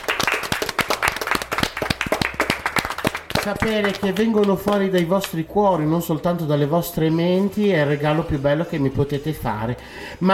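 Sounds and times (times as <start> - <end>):
audience applause: 0.0 - 5.0
louder individual claps: 0.0 - 5.4
speech: 3.4 - 10.3.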